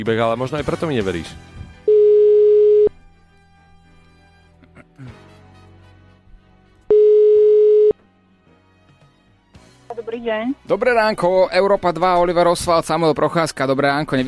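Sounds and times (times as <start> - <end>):
speech: 0.0 - 1.6, 10.3 - 14.2
telephone ringback tone while a call is placed to a hotel: 1.9 - 2.9, 6.9 - 7.9.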